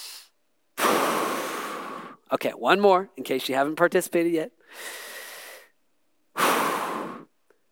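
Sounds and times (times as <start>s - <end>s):
person drawing a deep breath: 0.0s - 2.3s, 4.6s - 5.8s, 6.4s - 7.6s
speech: 2.3s - 5.0s.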